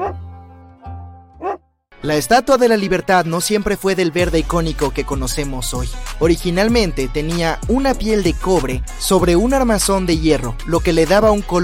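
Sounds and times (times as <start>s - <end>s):
dog barking: 1.4s - 1.6s
speech: 2.0s - 11.6s.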